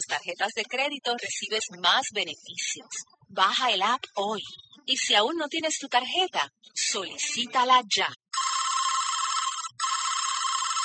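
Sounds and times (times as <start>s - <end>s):
speech: 0.1s - 8.2s
telephone ringing unanswered with an electronic trill: 8.3s - 10.8s.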